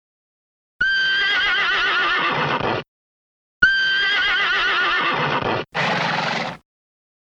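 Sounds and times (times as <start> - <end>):
horse whinnying with quavering neighs: 0.9 - 2.8, 3.6 - 6.6
horse giving a short breathy snort: 5.8 - 6.6.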